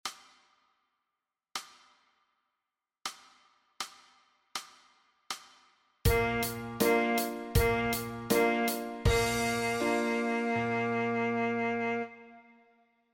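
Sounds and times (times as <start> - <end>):
saxophone note G: 6.1 - 12.8.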